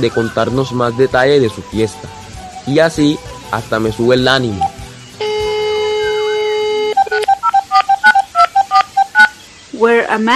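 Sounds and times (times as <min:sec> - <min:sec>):
speech: 0:00.0 - 0:04.7, 0:09.8 - 0:10.3
touch-tone beeps dialing a telephone number to Bolivia: 0:04.5 - 0:09.4.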